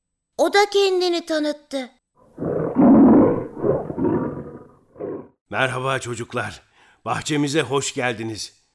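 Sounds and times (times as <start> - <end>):
speech: 0.4 - 2.0, 5.5 - 8.6
lion roaring in a low rumbling growl: 2.3 - 5.3.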